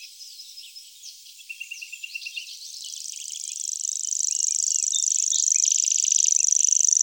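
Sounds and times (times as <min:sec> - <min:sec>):
Common grasshopper warbler reeling song in Germany, Austria and Switzerland: 0:01.4 - 0:07.0.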